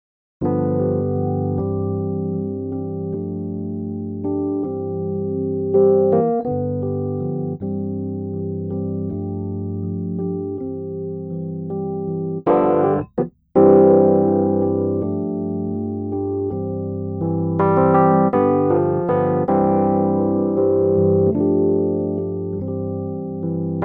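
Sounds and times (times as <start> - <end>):
Rhodes electric piano: 0.4 - 23.8.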